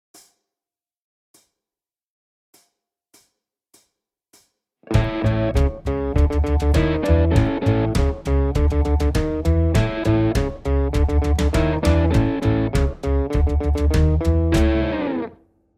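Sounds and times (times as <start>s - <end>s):
Chicago blues guitar: 4.9s - 15.4s.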